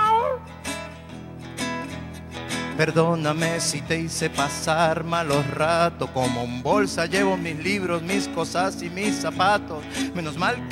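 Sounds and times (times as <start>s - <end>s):
man imitating the meow of an old cat: 0.0s - 0.4s
speech: 2.8s - 10.6s.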